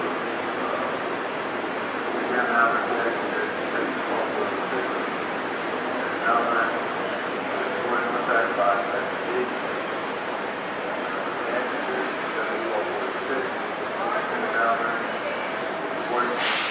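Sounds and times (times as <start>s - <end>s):
dense murmur of many overlapping voices on a train platform: 0.0s - 16.6s
sharp hiss on a train platform: 16.4s - 16.6s.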